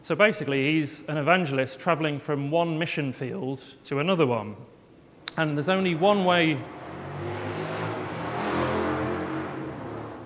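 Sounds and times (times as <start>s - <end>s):
speech: 0.0s - 4.8s, 5.4s - 7.3s
motorbike engine revving: 5.7s - 10.2s.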